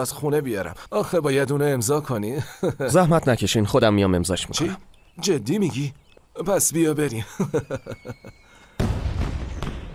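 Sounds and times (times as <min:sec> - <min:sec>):
speech: 0:00.0 - 0:08.4
laughter: 0:02.3 - 0:03.2, 0:07.1 - 0:08.5
gunshots in daylight in a village neighborhood: 0:08.8 - 0:09.9.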